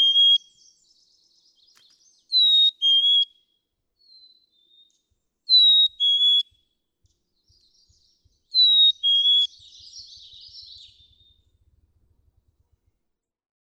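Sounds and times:
black-capped chickadee two-note whistled song: 0:00.0 - 0:03.4, 0:04.0 - 0:06.6, 0:07.5 - 0:11.4.

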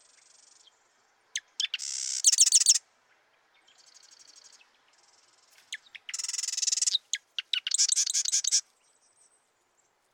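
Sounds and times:
marsh wren buzzy rattling song: 0:01.4 - 0:02.8, 0:05.7 - 0:08.6.

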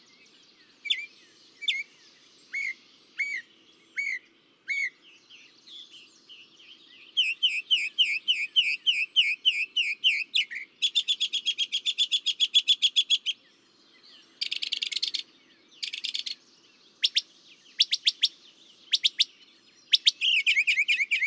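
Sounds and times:
northern mockingbird song: 0:00.0 - 0:21.2.

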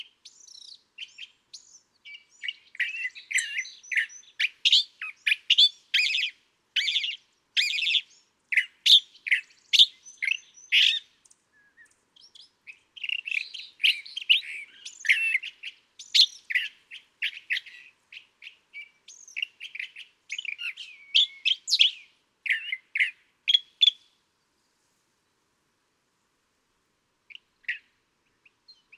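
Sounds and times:
California thrasher singing varied raspy and chattering phrases: 0:02.1 - 0:24.0.

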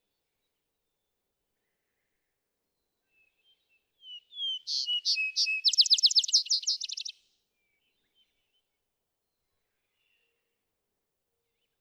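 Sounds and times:
vesper sparrow song: 0:02.8 - 0:10.4.

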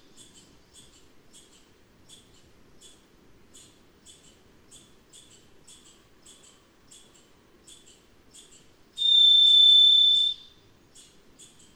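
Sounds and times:
varied thrush sustained high burry whistle: 0:09.0 - 0:10.4.

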